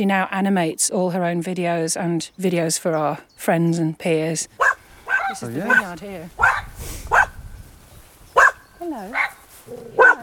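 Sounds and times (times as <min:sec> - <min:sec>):
speech: 0:00.0 - 0:07.2, 0:08.8 - 0:10.2
dog barking in sharp bursts: 0:04.6 - 0:07.4, 0:08.4 - 0:10.2.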